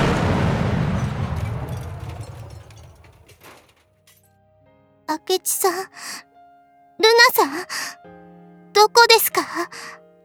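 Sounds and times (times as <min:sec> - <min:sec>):
bomb explosion: 0:00.0 - 0:03.2
speech: 0:05.1 - 0:06.3, 0:07.0 - 0:08.2, 0:08.8 - 0:10.0.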